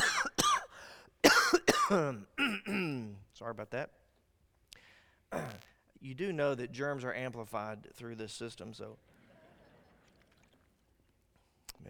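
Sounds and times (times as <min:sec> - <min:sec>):
person coughing harshly: 0:00.0 - 0:03.1
speech: 0:01.9 - 0:04.0, 0:05.3 - 0:09.1.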